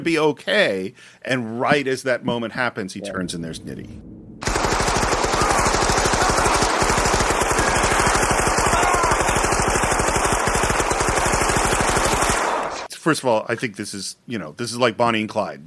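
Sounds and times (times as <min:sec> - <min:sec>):
speech: 0:00.0 - 0:04.1, 0:13.0 - 0:15.6
machine-gun fire in a film scene: 0:04.4 - 0:12.9.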